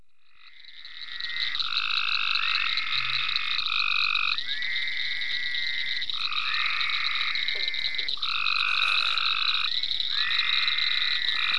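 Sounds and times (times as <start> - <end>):
several frogs calling in ponds on a permaculture farm: 0.0 - 11.5
constant high-pitched background hum: 7.6 - 9.6.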